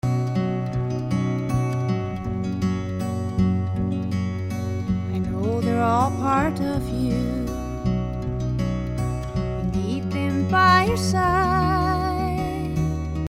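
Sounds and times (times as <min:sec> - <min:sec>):
music: 0:00.0 - 0:13.3.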